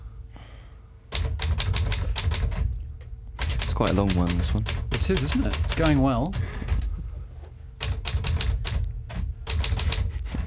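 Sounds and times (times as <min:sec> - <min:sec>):
typewriter typing: 0:01.1 - 0:02.8, 0:03.4 - 0:06.8, 0:07.8 - 0:10.4
speech: 0:03.8 - 0:06.6.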